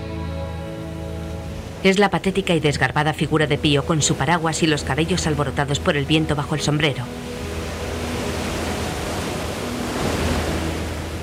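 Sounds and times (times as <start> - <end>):
sea waves breaking at the foot of a cliff: 0.0 - 11.2
wind: 0.0 - 11.2
speech: 1.8 - 7.4.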